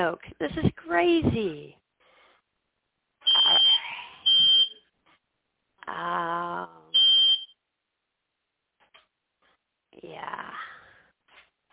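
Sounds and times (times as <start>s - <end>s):
speech: 0.0s - 1.8s, 5.9s - 6.8s
house fire alarm sounding loud high-pitched beeps: 3.2s - 4.8s, 6.9s - 7.6s.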